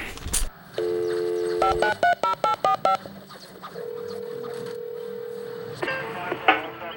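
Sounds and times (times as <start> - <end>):
telephone dial tone: 0.8 - 3.1, 3.8 - 5.9
telephone keypad beeps: 0.8 - 3.1, 3.8 - 5.8
long clear telephone ringing tone: 0.8 - 6.6.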